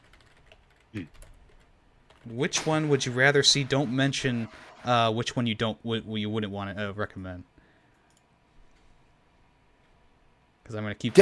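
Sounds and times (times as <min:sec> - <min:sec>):
typing on a computer keyboard: 0:00.0 - 0:02.3
speech: 0:00.9 - 0:01.3, 0:02.2 - 0:07.5, 0:10.7 - 0:11.1.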